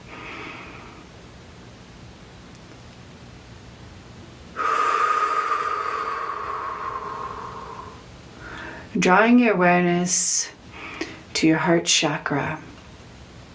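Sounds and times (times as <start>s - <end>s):
deep breath: 0.0s - 1.0s, 4.6s - 8.9s
low hiss: 0.0s - 13.5s
speech: 9.0s - 10.6s, 11.4s - 12.7s.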